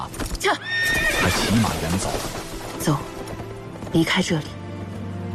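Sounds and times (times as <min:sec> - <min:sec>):
horse hooves clip-clopping: 0:00.1 - 0:05.2
horse whinnying: 0:00.4 - 0:02.2.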